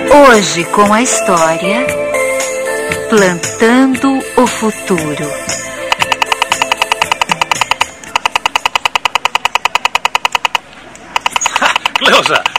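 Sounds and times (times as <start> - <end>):
speech: 0.1 - 2.2, 3.1 - 5.6, 12.2 - 12.4
toy machine gun firing electronic bursts: 5.9 - 10.6, 11.2 - 12.5
laughter: 11.4 - 12.5.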